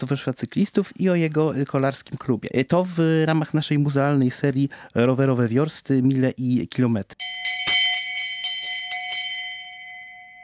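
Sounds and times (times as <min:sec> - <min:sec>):
speech: 0:00.0 - 0:07.4
handheld last-lap bell ringing: 0:07.2 - 0:10.4.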